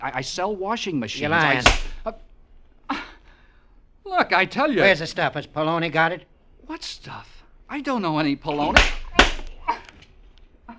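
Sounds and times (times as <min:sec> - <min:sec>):
speech: 0:00.0 - 0:02.3, 0:04.1 - 0:09.0
slap across the face: 0:01.6 - 0:02.0, 0:08.6 - 0:09.9.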